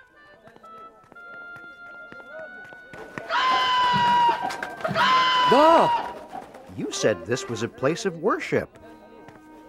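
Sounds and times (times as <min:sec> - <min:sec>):
bustling noise and voices in a temple: 0:00.0 - 0:09.6
donkey hooves clip-clopping on a hard floor in a temple: 0:00.1 - 0:07.0
speech: 0:05.5 - 0:06.1, 0:06.8 - 0:08.8.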